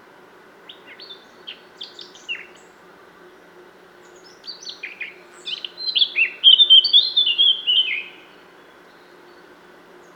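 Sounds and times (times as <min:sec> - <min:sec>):
Eurasian blackcap Sylvia atricapilla song: 0:00.6 - 0:02.8, 0:04.0 - 0:09.5.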